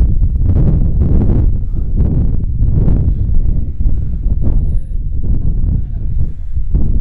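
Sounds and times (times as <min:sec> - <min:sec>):
loud wind buffeting the microphone: 0:00.0 - 0:06.9
faint murmuring voices: 0:04.8 - 0:06.7.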